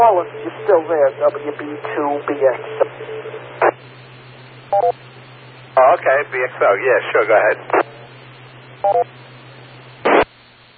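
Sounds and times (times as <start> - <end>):
burst of static from radio repeater being keyed: 0.0 - 3.9, 5.7 - 8.7, 10.0 - 10.3
faint steady hum on a narrow radio channel: 0.0 - 10.7
speech: 0.1 - 3.3, 4.8 - 5.1, 5.8 - 7.8, 8.8 - 9.2
dual-tone beeps: 4.7 - 5.0, 8.8 - 9.1.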